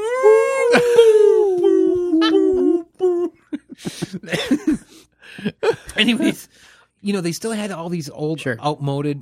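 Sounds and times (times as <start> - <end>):
person imitating whale song: 0.0 - 3.4
person laughing: 0.4 - 6.4
speech: 6.0 - 9.2.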